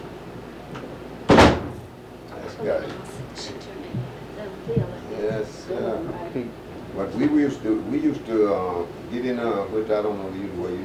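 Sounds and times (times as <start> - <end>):
door being shut: 1.3 - 1.9
speech: 2.6 - 10.8.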